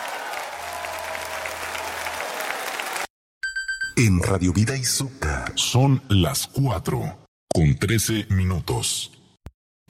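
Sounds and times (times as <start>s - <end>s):
crowd applauding: 0.0s - 3.1s
speech: 4.0s - 9.2s.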